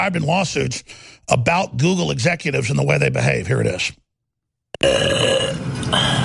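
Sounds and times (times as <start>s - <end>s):
speech: 0.0s - 4.0s, 4.8s - 6.2s
woman burping loudly: 4.8s - 6.2s.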